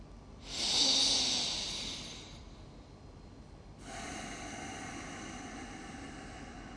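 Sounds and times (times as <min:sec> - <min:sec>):
deep breathing in and out: 0:00.4 - 0:02.8, 0:03.8 - 0:06.7.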